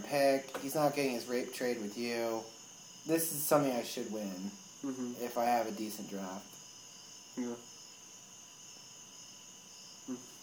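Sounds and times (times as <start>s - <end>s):
crickets chirping: 0.0s - 10.4s
speech: 0.1s - 6.6s, 7.4s - 7.7s, 10.1s - 10.3s
low vocal murmurs: 4.8s - 5.3s, 7.4s - 7.6s.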